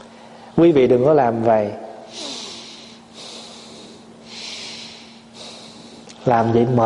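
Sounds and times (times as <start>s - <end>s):
speech: 0.6s - 2.2s, 6.2s - 6.8s
heavy forced breathing: 2.1s - 6.2s.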